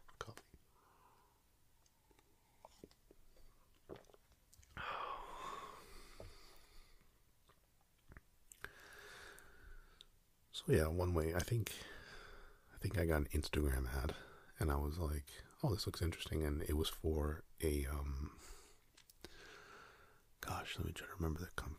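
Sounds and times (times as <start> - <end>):
soft breaths: 0.1 - 4.0, 4.6 - 7.3, 8.5 - 10.2, 11.7 - 12.8, 18.2 - 21.2
sipping a drink: 2.1 - 5.4
speech: 10.6 - 12.0, 12.8 - 18.6, 20.6 - 21.7.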